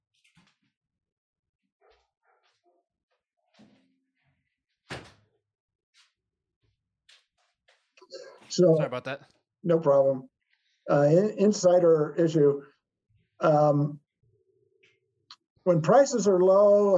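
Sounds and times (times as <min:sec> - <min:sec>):
door pushed shut with a loud sharp thud: 0:04.9 - 0:05.3
speech: 0:08.5 - 0:10.3, 0:10.9 - 0:12.7, 0:13.4 - 0:14.0, 0:15.6 - 0:16.9.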